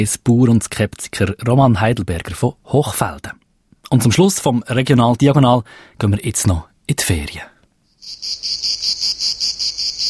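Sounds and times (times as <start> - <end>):
speech: 0.0 - 7.5
cicada buzzing in a rapid pulsing rhythm: 8.0 - 10.0.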